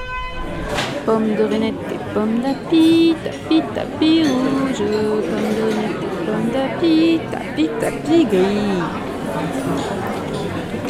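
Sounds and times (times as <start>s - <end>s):
crowd chatter in a busy café: 0.0s - 10.8s
louder voices in a café: 0.9s - 9.3s
speech: 1.0s - 10.8s.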